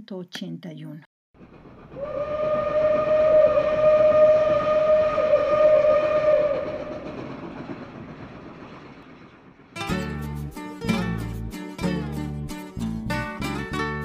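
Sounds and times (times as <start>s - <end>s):
speech: 0.1s - 1.1s, 2.0s - 2.5s
train rumbling by: 1.4s - 13.0s
train whistle blowing one long steady tone: 2.0s - 7.2s.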